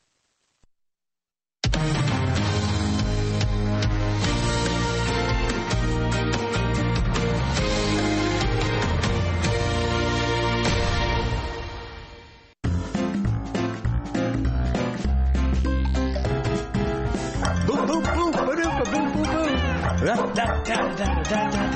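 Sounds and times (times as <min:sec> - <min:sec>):
upbeat radio show intro music: 0:01.6 - 0:11.8, 0:12.6 - 0:21.7
dogs barking: 0:17.4 - 0:21.7
cats meowing: 0:18.7 - 0:20.0.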